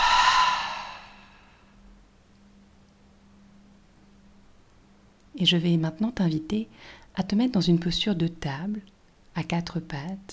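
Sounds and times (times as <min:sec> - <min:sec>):
deep exhale through the mouth during a yin yoga session: 0:00.0 - 0:01.7
speech: 0:05.4 - 0:10.3.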